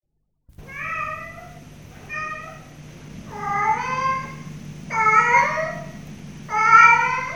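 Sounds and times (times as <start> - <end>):
low background hum: 0.5 - 7.3
cat meowing: 0.6 - 2.7, 3.3 - 7.3.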